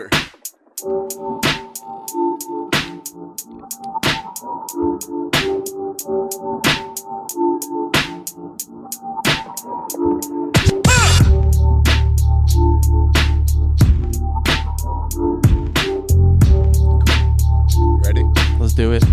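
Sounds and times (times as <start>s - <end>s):
speech: 0.0s - 1.4s
instrumental hip hop beat with looping melodic sample: 0.0s - 19.1s
heavy booming bass line: 10.7s - 19.1s.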